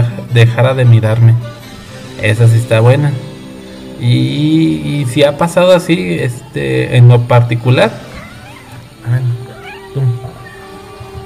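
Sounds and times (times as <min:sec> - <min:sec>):
speech: 0:00.4 - 0:01.5, 0:02.2 - 0:03.3, 0:04.0 - 0:08.1, 0:09.0 - 0:09.4
female cat meowing: 0:07.9 - 0:11.2.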